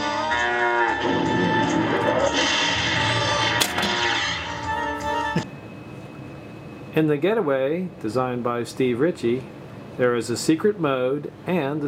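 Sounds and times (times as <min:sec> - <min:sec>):
loud drawn-out cow moo from a pinball machine: 0:00.2 - 0:04.6
speech: 0:07.0 - 0:11.8.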